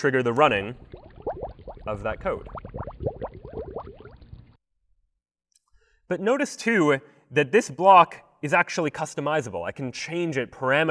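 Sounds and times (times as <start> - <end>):
speech: 0.0 - 1.0, 1.8 - 2.6, 6.1 - 10.8
rapid watery bubbling pops: 0.6 - 4.6.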